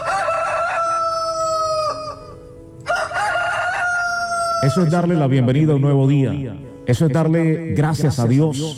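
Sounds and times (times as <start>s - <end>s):
rooster crowing at dawn: 0.0s - 5.1s
speech: 4.6s - 8.7s.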